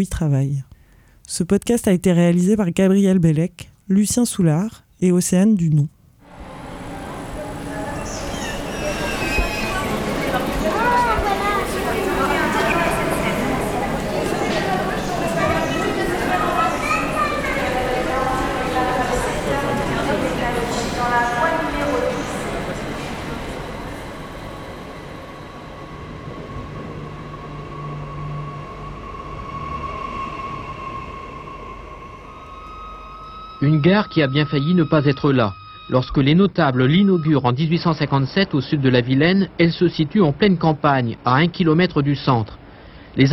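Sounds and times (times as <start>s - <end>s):
speech: 0.0s - 0.7s, 1.3s - 6.0s, 33.8s - 42.6s, 43.2s - 43.3s
rail noise from trains at the Rennes railway station: 6.2s - 41.8s
crowd chatter at the Rennes railway station: 6.4s - 25.1s.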